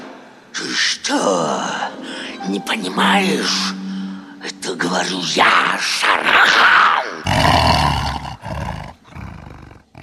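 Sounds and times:
speech: 0.6 - 3.8, 4.4 - 8.0
tiger roaring: 7.2 - 10.0.

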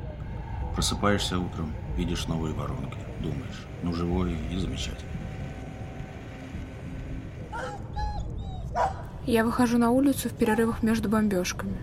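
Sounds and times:
steady low rumble: 0.0 - 11.8
speech: 0.8 - 5.2, 9.3 - 11.8
dog whimpering: 7.6 - 9.0.

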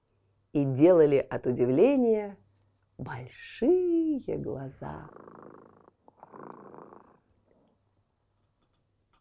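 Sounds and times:
speech: 0.5 - 2.4, 3.0 - 5.7
cat purring: 4.9 - 7.4.

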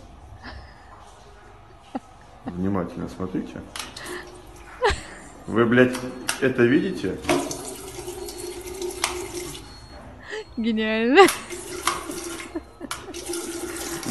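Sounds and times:
speech: 1.9 - 3.8, 5.5 - 7.7, 10.6 - 11.4
water running from a pump-fed tap filling a kettle: 7.2 - 9.7, 11.5 - 12.4, 13.2 - 14.0.

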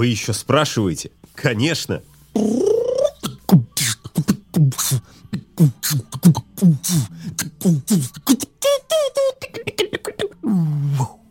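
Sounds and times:
speech: 0.0 - 2.5
single voice beatboxing: 2.3 - 11.2.

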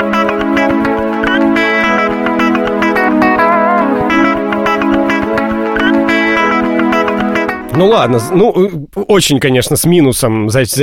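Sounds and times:
2000s Russian pop song with layered synths and a driving beat: 0.3 - 8.2
speech: 7.8 - 10.8.

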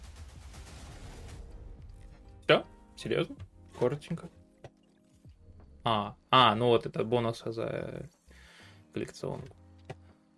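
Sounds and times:
dense rapid gunfire in a game trailer: 0.0 - 1.6
speech: 2.5 - 4.4, 5.8 - 8.2, 9.0 - 9.6.

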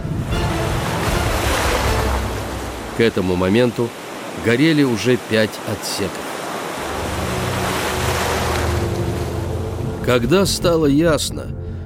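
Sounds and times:
gusting wind: 0.0 - 10.2
rough stormy sea waves crashing: 0.0 - 10.8
speech: 3.0 - 6.3, 10.1 - 11.6.

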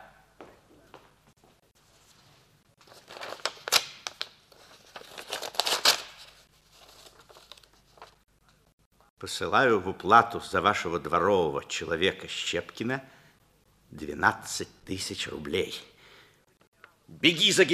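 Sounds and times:
paper crinkling and rustling: 2.8 - 8.3
delivered paper package torn open: 2.9 - 7.8
speech: 9.2 - 13.2, 14.0 - 15.9, 17.2 - 17.7.

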